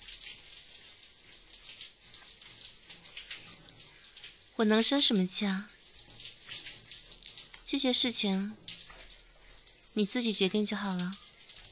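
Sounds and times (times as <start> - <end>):
shower running water: 0.0 - 11.6
speech: 4.6 - 5.8, 7.7 - 8.7, 10.0 - 11.2.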